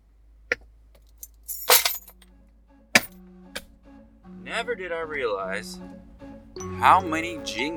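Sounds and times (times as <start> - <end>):
keys jingling in a car: 1.2 - 2.2
speech: 4.6 - 6.0, 6.8 - 7.7.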